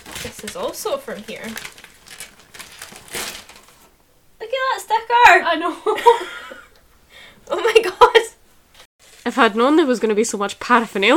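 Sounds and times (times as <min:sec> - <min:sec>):
gift wrapping paper crinkling and rustling as presents are unwrapped: 0:00.0 - 0:04.0, 0:09.0 - 0:09.5
speech: 0:00.4 - 0:01.8, 0:05.0 - 0:06.4, 0:07.5 - 0:08.0, 0:09.3 - 0:11.1.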